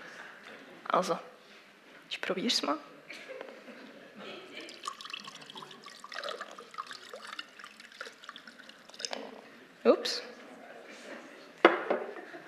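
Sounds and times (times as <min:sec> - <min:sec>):
speech: 0:00.9 - 0:01.3, 0:02.1 - 0:02.9, 0:10.0 - 0:10.3
water poured through a makeshift coffee filter with holes: 0:04.6 - 0:09.4.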